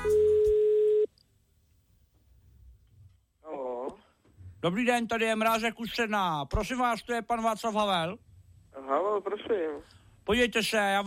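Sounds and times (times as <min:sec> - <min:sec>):
steady telephone tone as a call is placed: 0:00.0 - 0:01.1
speech: 0:04.6 - 0:11.0.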